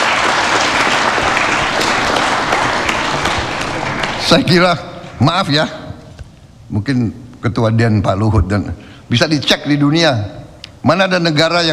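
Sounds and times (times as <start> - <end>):
large audience applause: 0.0 - 5.2
speech: 4.3 - 5.8, 6.7 - 11.7.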